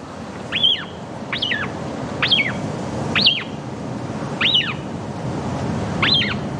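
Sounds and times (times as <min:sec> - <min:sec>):
steady low hiss: 0:00.0 - 0:06.5
Atlantic shearwater chick calling in its nest: 0:00.5 - 0:03.6, 0:04.4 - 0:04.9, 0:06.0 - 0:06.5.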